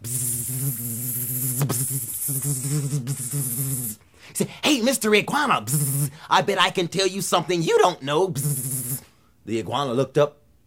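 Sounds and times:
voice imitating the buzzing of a huge mosquito: 0.0s - 4.0s, 5.3s - 6.3s, 7.9s - 9.1s
speech: 1.6s - 3.5s, 4.4s - 8.7s, 9.5s - 10.4s.

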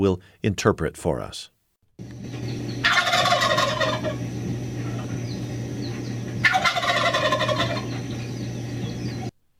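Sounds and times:
speech: 0.0s - 2.4s
steady low hum: 2.0s - 9.4s
adult male wild turkey gobbler gobbling in spring to attract a mate: 2.6s - 8.4s.

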